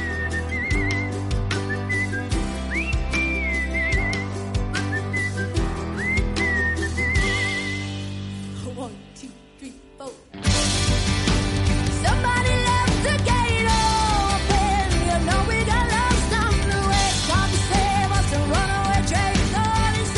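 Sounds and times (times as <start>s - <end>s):
whistled melody with vibrato-like notes: 0.0s - 8.2s
band backing with pulsing beat: 0.0s - 8.6s, 10.4s - 20.1s.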